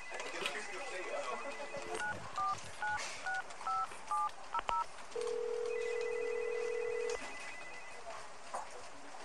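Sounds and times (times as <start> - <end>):
long steady telephone ringing tone on the line: 0.0 - 3.0, 5.2 - 8.0
push-button telephone dialing beeps: 0.0 - 7.9
faint noise: 0.0 - 9.2.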